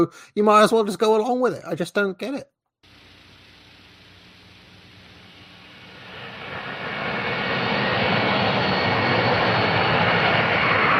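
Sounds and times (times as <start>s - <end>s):
speech: 0.0s - 2.5s
large jet plane roaring on landing approach: 4.4s - 10.9s.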